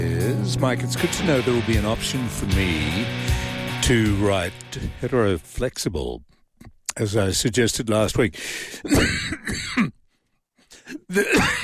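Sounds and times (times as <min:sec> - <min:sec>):
speech: 0:00.5 - 0:06.3, 0:07.0 - 0:10.0, 0:10.9 - 0:11.6
person coughing after inhaling something: 0:08.8 - 0:10.0, 0:10.8 - 0:11.6
person clearing throat after inhaling something: 0:08.9 - 0:10.0, 0:10.9 - 0:11.6.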